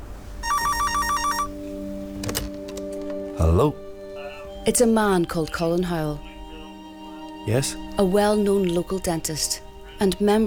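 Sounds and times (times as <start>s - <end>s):
telephone ringing with a rapid trilling burst: 0.4s - 1.6s
speech: 3.4s - 3.8s, 4.7s - 6.3s, 7.4s - 10.4s.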